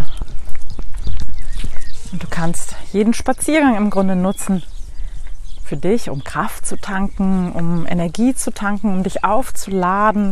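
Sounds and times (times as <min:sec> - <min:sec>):
horses walking with hooves clip-clopping: 0:00.0 - 0:03.2
speech: 0:02.4 - 0:04.8, 0:05.7 - 0:10.3.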